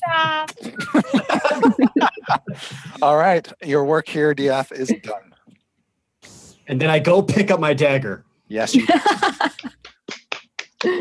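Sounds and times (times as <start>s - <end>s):
laughter: 0.6s - 3.0s, 8.7s - 9.8s
speech: 3.0s - 5.3s, 6.7s - 9.3s, 10.8s - 10.9s
sharp hand claps: 9.4s - 10.9s.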